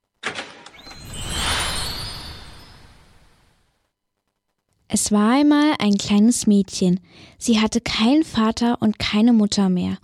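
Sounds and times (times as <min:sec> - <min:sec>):
quick bright strikes: 0:00.8 - 0:03.5
golden fairy-tale gate opening as a magical shimmer effect: 0:00.8 - 0:03.7
speech: 0:05.0 - 0:10.0.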